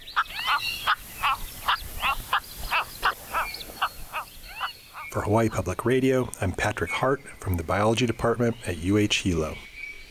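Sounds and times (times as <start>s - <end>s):
cattle egret croaking calls: 0.0s - 5.2s
speech: 5.2s - 9.7s.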